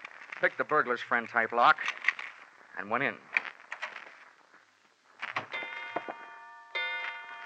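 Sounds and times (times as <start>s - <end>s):
speech: 0.4s - 2.1s, 2.8s - 3.3s
grandfather clock chime strikes: 5.6s - 7.4s.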